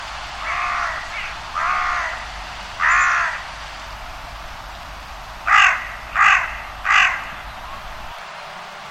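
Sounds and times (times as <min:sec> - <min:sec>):
background hiss: 0:00.0 - 0:08.9
bird with hoarse crow-like caws: 0:00.2 - 0:08.2.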